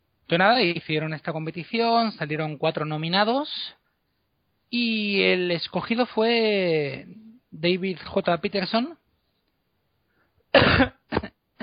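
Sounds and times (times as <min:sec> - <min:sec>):
speech: 0:00.3 - 0:03.8, 0:04.7 - 0:09.0, 0:10.6 - 0:11.2
man coughing to clear his chest: 0:10.5 - 0:11.6.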